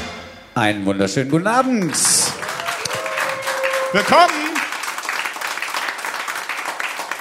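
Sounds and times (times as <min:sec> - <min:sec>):
speech: 0:00.6 - 0:02.4, 0:03.9 - 0:04.4
live audience applauding in a cellar venue: 0:01.6 - 0:07.1.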